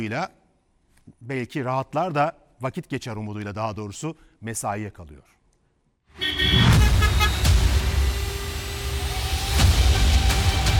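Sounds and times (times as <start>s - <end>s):
speech: 0.0s - 0.4s, 1.2s - 5.4s
car horn tooting: 6.2s - 8.5s
dense city road traffic in Ankara: 6.2s - 10.7s.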